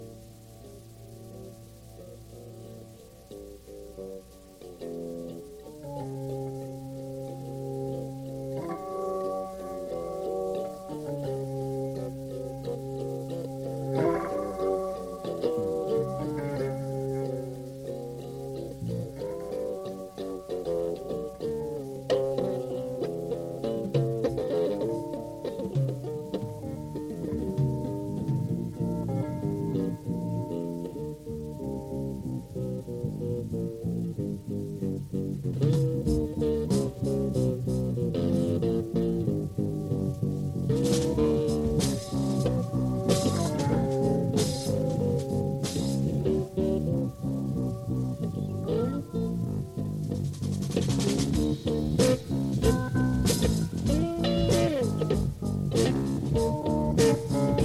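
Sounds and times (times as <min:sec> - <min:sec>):
fuzzy guitar jam: 0:00.0 - 0:57.6.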